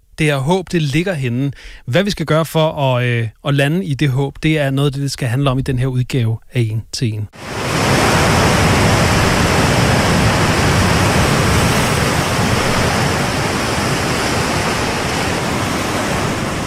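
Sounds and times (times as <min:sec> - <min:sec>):
speech: 0:00.2 - 0:08.0
ocean waves washing in: 0:07.4 - 0:16.6.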